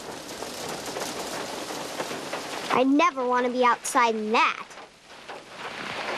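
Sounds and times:
hail falling during a tornado-bearing storm: 0.0 - 6.1
speech: 2.8 - 4.7.

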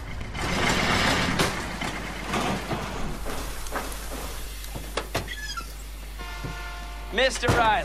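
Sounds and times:
sharp clanks and clicks: 0.0 - 5.3
clapped-out rusty truck engine with dead fuel pump rumbling: 0.0 - 7.8.

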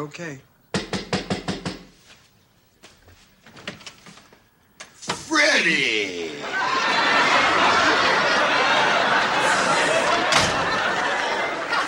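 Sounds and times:
speech: 0.0 - 0.5, 5.3 - 7.8
woman knocking on a door: 0.8 - 1.9
laughter: 6.1 - 11.8.

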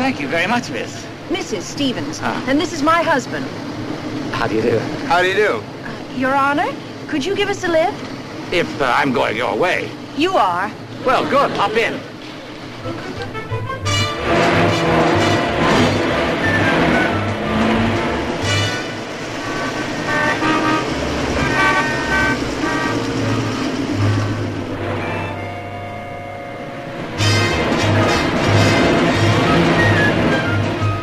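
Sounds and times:
busy road traffic engine rumble: 0.0 - 31.0
speech: 0.1 - 3.8, 4.4 - 12.1, 12.8 - 13.4
car horns honking in road traffic: 12.8 - 31.0.

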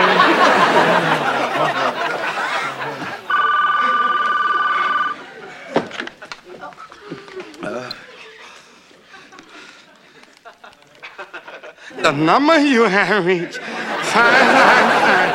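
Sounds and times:
people chattering: 0.0 - 15.3
people laughing: 0.0 - 15.3
telephone ringing with electronic trill: 3.2 - 5.3
speech: 12.1 - 15.3.

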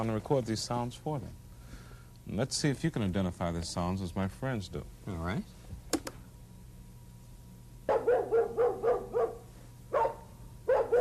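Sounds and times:
speech: 0.0 - 1.4, 2.3 - 6.1
low steady hum: 0.0 - 10.9
neighborhood dog barking: 7.9 - 10.9.

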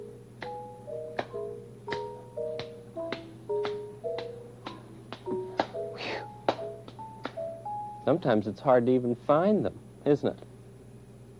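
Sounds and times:
gentle tonal music: 0.0 - 8.8
hands clapping behind the back as an exercise: 1.2 - 7.5
speech: 8.1 - 10.5.

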